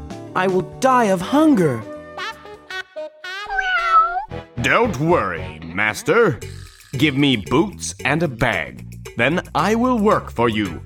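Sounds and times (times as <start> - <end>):
speech: 0.4 - 1.9, 4.6 - 10.8
cat meowing: 3.4 - 4.3.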